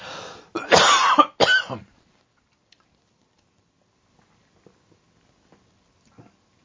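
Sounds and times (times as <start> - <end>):
person coughing: 0.5 - 1.9.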